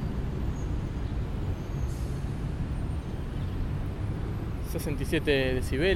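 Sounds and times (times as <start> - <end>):
distant city street traffic rumble: 0.0 - 5.9
air brakes hissing: 1.7 - 2.4
speech: 4.7 - 5.9.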